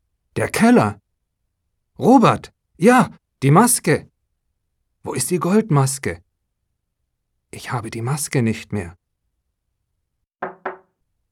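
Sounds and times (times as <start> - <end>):
speech: 0.4 - 1.0, 2.0 - 4.1, 5.0 - 6.2, 7.5 - 9.0
firm knocks on a door: 10.4 - 10.9.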